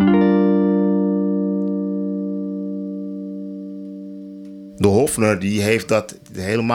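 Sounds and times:
clean electric guitar chord ringing: 0.0 - 4.8
speech: 4.8 - 6.7.

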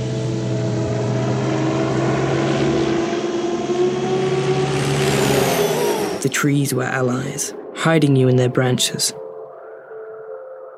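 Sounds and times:
aircraft engine roar: 0.0 - 6.4
speech: 6.3 - 9.2.

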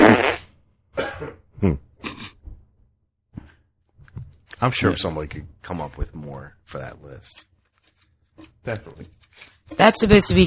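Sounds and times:
loud raspy fart with sputtering bursts: 0.0 - 2.5
speech: 1.6 - 1.9, 4.6 - 7.5, 8.4 - 10.4.

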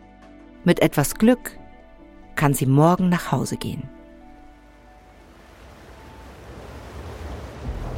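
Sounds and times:
speech: 0.6 - 1.6, 2.4 - 4.0
storm surge rushing flood water: 5.1 - 7.9
gusting wind: 5.2 - 7.9.

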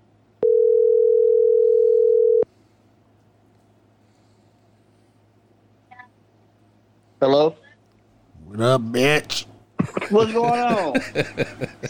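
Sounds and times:
low hum: 0.0 - 11.8
telephone dial tone while placing call: 0.4 - 2.4
speech: 8.7 - 9.5, 10.1 - 11.8
laughter: 9.8 - 11.8.

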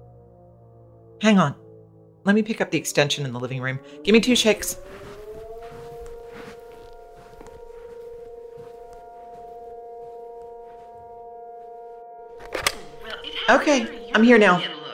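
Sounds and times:
civil defense alarm siren: 0.0 - 14.9
speech: 1.2 - 1.6, 2.2 - 5.1, 13.5 - 14.8
faint rustling: 4.1 - 12.0.

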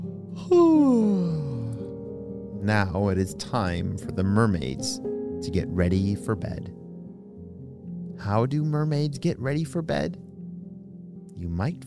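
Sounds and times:
person yawning: 0.4 - 2.0
speech: 0.5 - 1.3, 2.6 - 6.8, 8.2 - 10.2, 11.4 - 11.8.

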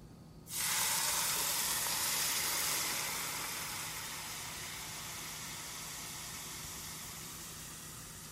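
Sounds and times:
hot oil sizzling poured over aromatics and a spice mix in a bowl: 0.5 - 8.3.

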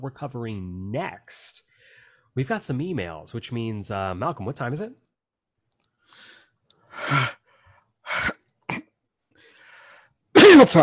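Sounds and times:
speech: 0.0 - 1.7, 2.4 - 5.0, 7.0 - 7.4, 10.5 - 10.8
breathy inhale: 1.7 - 2.3, 6.0 - 7.9, 9.3 - 10.2
heavy breathing: 1.7 - 2.3, 6.0 - 8.4, 9.3 - 10.2
loud sneeze: 10.3 - 10.8.

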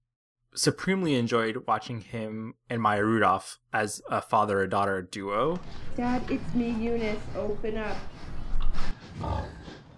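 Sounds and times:
speech: 0.6 - 8.3, 9.2 - 9.6
hog grunting and snorting: 8.5 - 9.9.

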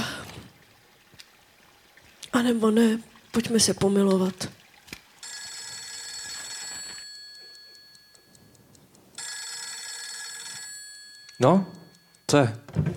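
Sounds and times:
speech: 2.4 - 4.6, 11.4 - 12.9
metallic telephone bell ringing: 5.2 - 12.3.

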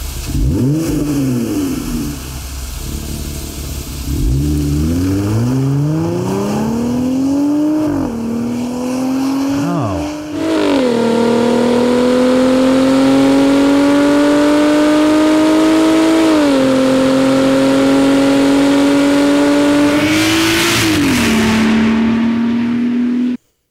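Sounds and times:
car engine revving through deep mellow aftermarket touring-style exhaust: 0.0 - 23.4
speech: 0.6 - 1.2.

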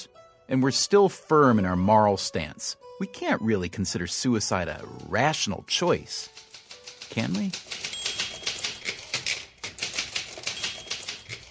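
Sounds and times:
speech: 0.5 - 6.5, 7.1 - 7.9
woman typing fast on a Smith Corona typewriter: 4.4 - 11.4.

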